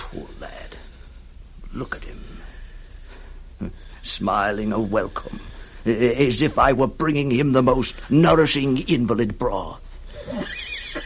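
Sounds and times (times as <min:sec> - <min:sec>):
speech: 0:01.7 - 0:02.6, 0:03.6 - 0:10.6
horses neighing loudly: 0:10.2 - 0:11.0.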